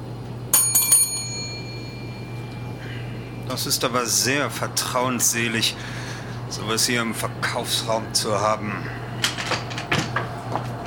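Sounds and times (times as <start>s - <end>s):
low hum: 0.0s - 10.8s
small bell being rung: 0.5s - 2.7s
speech: 3.5s - 9.0s.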